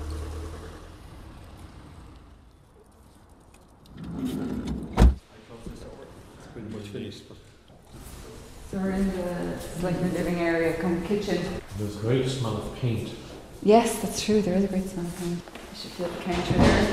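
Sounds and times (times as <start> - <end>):
car driving in and arriving: 0.0 - 5.3
speech: 6.9 - 7.6, 8.7 - 16.9.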